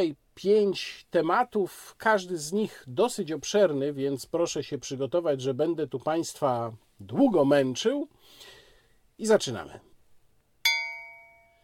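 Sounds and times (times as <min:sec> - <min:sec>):
speech: 0:00.0 - 0:08.6, 0:09.2 - 0:09.9
small bell ding: 0:10.6 - 0:11.6.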